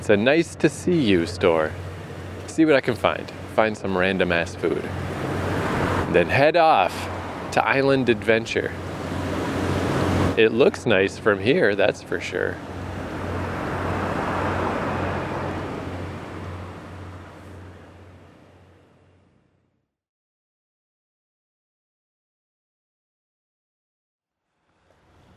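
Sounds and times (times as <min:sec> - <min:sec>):
loud engine rumble with low droning hum in a parking lot: 0:00.0 - 0:19.6
parking lot traffic noise: 0:00.0 - 0:19.6, 0:24.7 - 0:25.3
speech: 0:00.1 - 0:01.9, 0:02.6 - 0:05.1, 0:06.1 - 0:08.9, 0:10.4 - 0:12.7.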